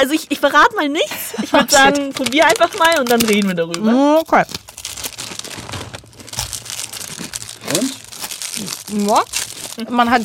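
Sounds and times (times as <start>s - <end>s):
speech: 0.0s - 4.6s, 7.7s - 8.0s, 8.6s - 10.2s
plastic snack wrapper crinkling and tearing open: 1.8s - 10.2s.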